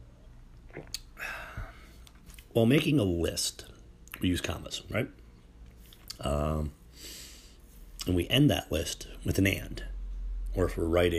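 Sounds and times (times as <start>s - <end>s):
swallow: 0.6s - 1.7s
person sipping a drink: 0.6s - 2.5s
speech: 2.6s - 5.2s, 6.2s - 7.2s, 8.0s - 9.9s, 10.6s - 11.1s.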